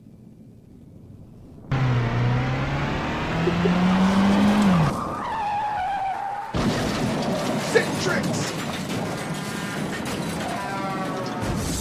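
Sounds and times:
car engine started and revving: 0:01.2 - 0:06.8
car tires squealing: 0:01.7 - 0:11.6.

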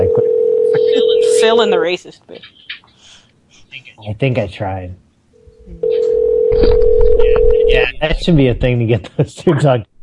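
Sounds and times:
loud steady telephone dialing tone: 0:00.0 - 0:01.4, 0:05.4 - 0:07.9
noise: 0:00.0 - 0:10.0
speech: 0:01.4 - 0:02.7, 0:03.8 - 0:05.0, 0:05.7 - 0:09.9.

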